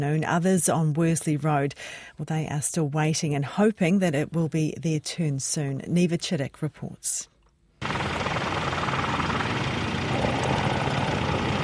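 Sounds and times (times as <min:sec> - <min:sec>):
speech: 0:00.0 - 0:08.0
helicopter flying overhead: 0:07.8 - 0:11.6.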